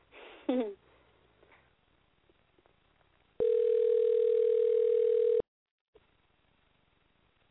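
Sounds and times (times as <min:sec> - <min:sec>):
speech: 0:00.5 - 0:00.8
telephone dial tone: 0:03.4 - 0:05.4.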